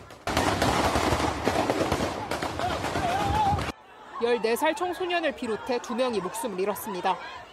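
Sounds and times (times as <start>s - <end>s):
rapid sharp gunshots fired on a street: 0.0s - 3.7s
crowd voices shouting: 1.4s - 7.5s
laughter: 3.8s - 7.5s
speech: 4.2s - 7.5s.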